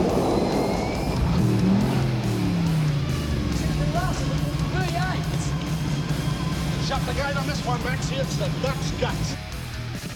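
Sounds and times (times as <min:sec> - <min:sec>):
351 V8 race car engine droning with gear changes: 0:00.0 - 0:10.1.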